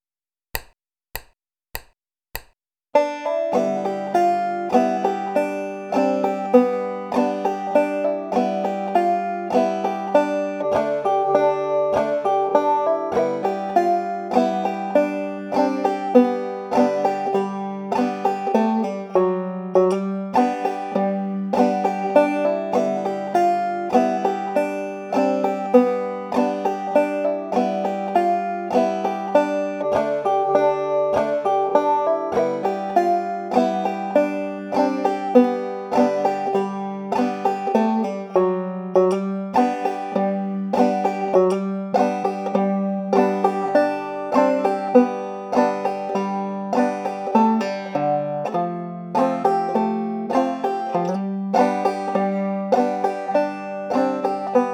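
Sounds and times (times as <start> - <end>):
folk tune with hammer-on, pull-off and slide: 0.6 - 54.7.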